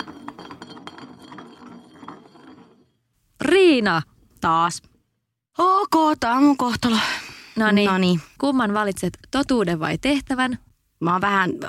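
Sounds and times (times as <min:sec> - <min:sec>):
glass bottle spinning on a surface in a game of spin the bottle: 0:00.0 - 0:03.1
speech: 0:03.7 - 0:04.9, 0:05.6 - 0:11.6.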